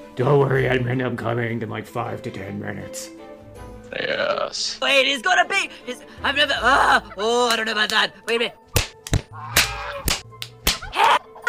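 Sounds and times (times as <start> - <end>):
speech: 0.2 - 3.3, 3.9 - 8.6
whip cracks: 8.7 - 11.1.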